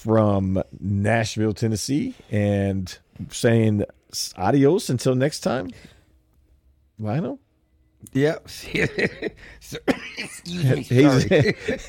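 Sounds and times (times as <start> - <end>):
speech: 0.0 - 5.9, 7.0 - 7.4, 8.0 - 11.8
laughter: 8.6 - 11.8
person coughing from something stuck in throat: 9.6 - 10.5
person clearing throat: 9.7 - 10.4.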